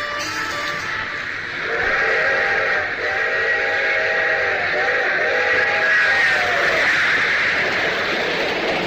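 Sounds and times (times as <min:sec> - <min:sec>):
freight train long held whistle: 0:00.0 - 0:07.6
freight train rolling cars rumbling across farmland: 0:00.0 - 0:08.8.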